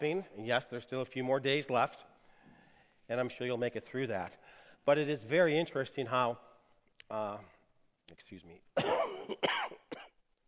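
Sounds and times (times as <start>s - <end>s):
speech: 0.0s - 2.2s, 3.1s - 6.5s, 7.1s - 7.5s, 8.1s - 9.8s
person coughing: 8.8s - 10.2s.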